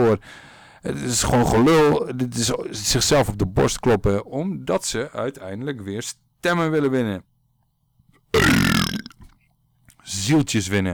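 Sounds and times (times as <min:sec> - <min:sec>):
speech: 0:00.0 - 0:07.3, 0:10.1 - 0:10.9
loud deep burp: 0:08.3 - 0:09.3.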